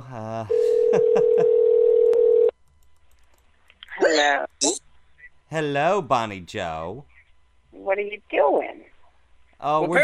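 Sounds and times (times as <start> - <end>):
speech: 0.1 - 1.6, 5.5 - 7.1, 7.9 - 8.9, 9.6 - 10.0
outgoing phone call telephone ringback tone: 0.5 - 2.5.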